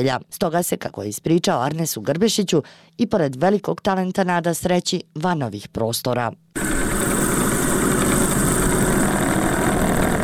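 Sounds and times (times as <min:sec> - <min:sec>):
speech: 0:00.0 - 0:07.1
old metal lathe running: 0:06.6 - 0:10.2.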